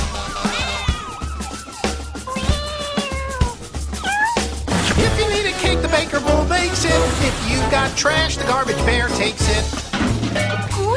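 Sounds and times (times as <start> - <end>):
music: 0.0 - 10.9
cat meowing in a tree: 0.4 - 4.6
speech: 7.7 - 9.8.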